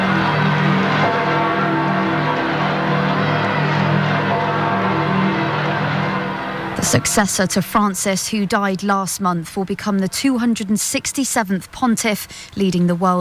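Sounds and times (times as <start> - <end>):
church bells ringing: 0.0 - 10.5
speech: 6.8 - 13.1.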